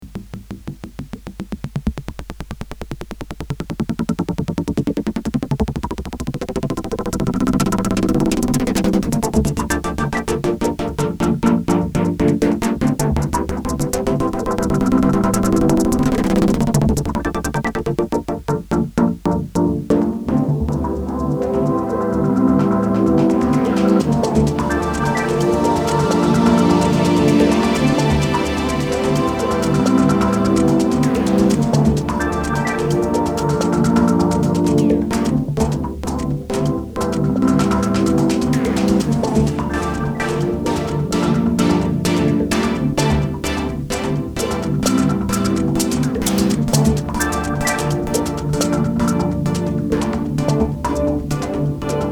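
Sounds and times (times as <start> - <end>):
Korg Monotron analog synthesizer output: 0.0 - 52.1.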